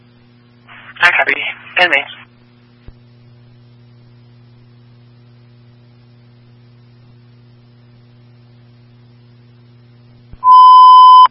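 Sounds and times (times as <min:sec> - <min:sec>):
low hum: 0:00.0 - 0:11.2
speech: 0:01.0 - 0:02.2
fire and medical radio dispatch alert tone beep: 0:10.4 - 0:11.2.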